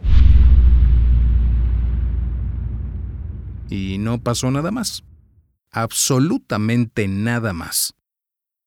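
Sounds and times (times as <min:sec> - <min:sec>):
distant torpedo explosion at sea: 0:00.0 - 0:05.5
heavy low rumble of a torpedo explosion at sea: 0:00.0 - 0:05.5
speech: 0:03.7 - 0:05.1, 0:05.7 - 0:08.0.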